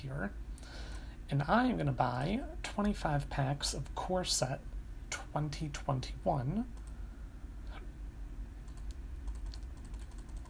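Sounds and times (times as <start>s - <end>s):
speech: 0.0s - 0.5s, 1.3s - 4.7s, 5.3s - 6.8s
low steady room hum: 0.0s - 10.4s
rapid computer mouse clicking: 8.7s - 10.4s.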